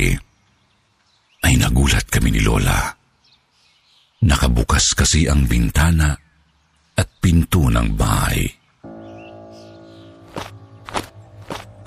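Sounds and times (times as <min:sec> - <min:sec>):
speech: 0:00.0 - 0:00.2, 0:01.4 - 0:03.0, 0:04.2 - 0:06.2, 0:07.0 - 0:08.6
steady low droning background: 0:08.8 - 0:11.8
heavy footsteps running on the wooden floor of a house: 0:10.3 - 0:11.7.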